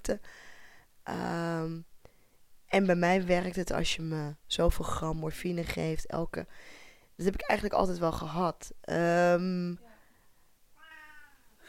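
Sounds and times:
faint room noise: 0.0s - 11.6s
speech: 0.1s - 1.9s, 2.7s - 9.9s
cat meowing: 10.8s - 11.5s.

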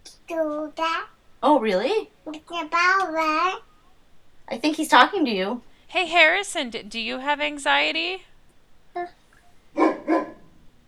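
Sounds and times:
speech: 0.3s - 3.7s, 4.5s - 8.3s, 9.0s - 9.2s
dog barking: 9.7s - 10.7s.

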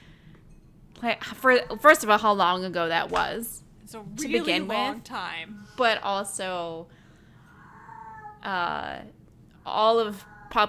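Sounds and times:
speech: 1.0s - 7.0s, 8.4s - 10.6s
cat meowing loudly in an outraged cry: 7.5s - 8.6s, 9.9s - 10.6s.

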